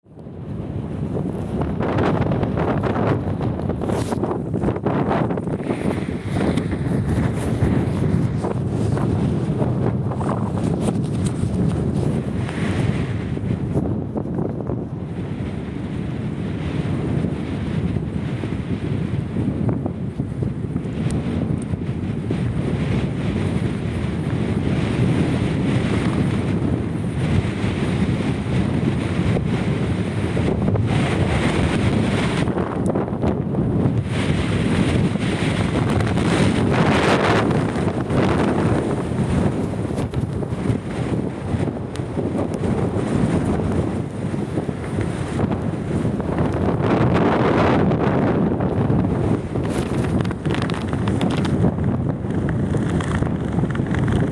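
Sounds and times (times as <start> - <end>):
howling whistling wind under a raincoat during a storm: 0.0 - 54.3
raincoat flapping in a storm: 1.1 - 14.8, 35.2 - 54.3.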